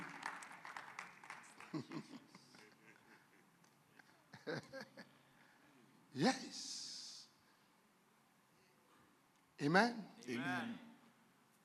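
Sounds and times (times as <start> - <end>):
crowd clapping in a large room: 0.0 - 3.1
speech: 1.7 - 2.3, 6.2 - 6.7, 9.6 - 10.8.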